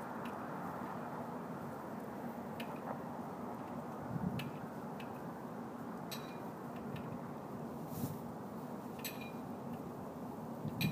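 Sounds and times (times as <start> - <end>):
traffic rumble on a waterfront street: 0.0 - 10.9
wind at a waterfront: 0.0 - 10.9
metallic clinks of a flagpole by a waterfront street: 6.0 - 7.2, 8.9 - 9.9, 10.7 - 10.9.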